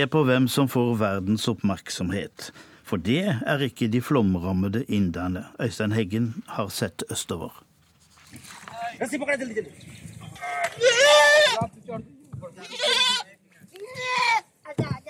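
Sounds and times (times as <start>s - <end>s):
speech: 0.0s - 7.7s, 9.0s - 13.3s
goat bleating in protest during a flood rescue in Bihar, eastern India: 10.3s - 11.7s, 12.5s - 14.5s.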